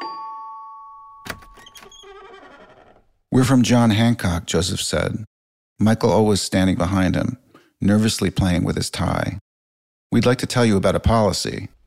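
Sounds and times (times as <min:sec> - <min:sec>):
doorbell chime: 0:00.0 - 0:01.2
speech: 0:03.4 - 0:09.4, 0:10.1 - 0:11.8.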